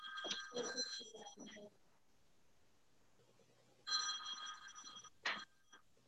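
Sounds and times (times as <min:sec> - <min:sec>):
phone ringing with trilling electronic tones: 0:00.0 - 0:01.6, 0:03.9 - 0:05.5.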